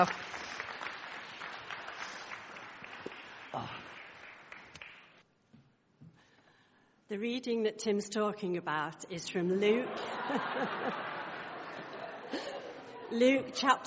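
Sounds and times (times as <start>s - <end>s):
speech: 0.0s - 0.2s, 7.1s - 11.1s, 13.1s - 13.8s
audience applause: 0.0s - 5.2s, 10.5s - 13.0s
laughter: 9.8s - 13.2s.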